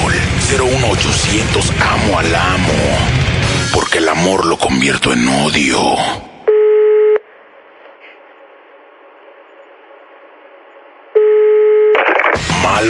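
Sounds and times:
speech: 0.6s - 6.3s
buzzing telephone line tones as a number is called: 6.5s - 7.2s, 9.1s - 12.3s.

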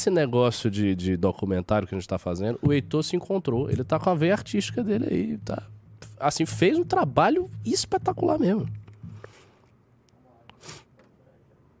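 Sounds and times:
speech: 0.0s - 8.8s
breathy sniffles into a microphone: 10.5s - 11.0s.

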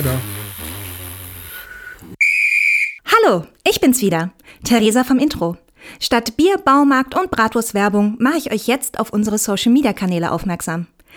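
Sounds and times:
speech: 0.0s - 0.4s, 3.3s - 11.1s
referee's whistle blown for halftime: 1.6s - 3.0s.

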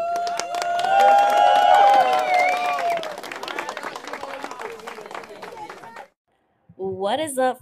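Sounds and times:
loud whoops and cheering voices: 0.0s - 4.7s
crowd applause: 0.0s - 6.2s
speech: 7.1s - 7.6s.

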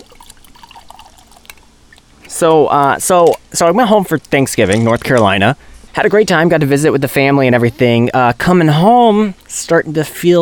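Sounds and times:
bourbon from Kentucky pouring into a glass: 0.0s - 2.0s
speech: 2.3s - 10.4s.

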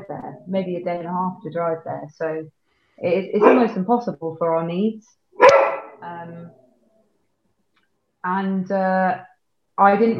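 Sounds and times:
speech: 0.5s - 6.6s, 8.2s - 10.1s
dog barking to get in with drawn-out whiny yelps: 5.4s - 6.0s.

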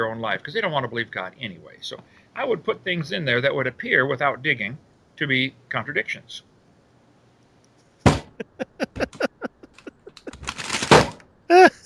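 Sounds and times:
speech: 0.0s - 6.5s
loud thump on a desk: 8.1s - 8.3s
laughter: 8.3s - 10.5s, 11.5s - 11.8s
object clattering as it tips over: 10.3s - 11.2s
rustling scrape: 10.3s - 11.2s.

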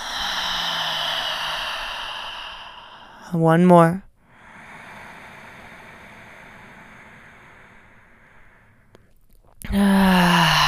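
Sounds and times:
deep breath in and steady airy exhale: 0.0s - 3.3s, 4.2s - 9.0s, 9.8s - 10.6s
speech: 3.3s - 4.1s.

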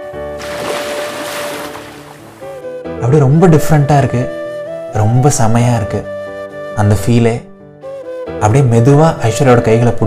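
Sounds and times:
sea wave surging in and receding: 0.4s - 2.6s
speech: 3.0s - 6.2s, 6.8s - 7.5s, 8.4s - 10.0s.

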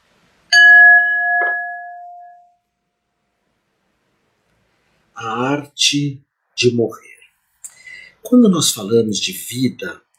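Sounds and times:
bell being struck: 0.5s - 2.6s
speech: 5.2s - 7.1s, 8.3s - 10.0s.

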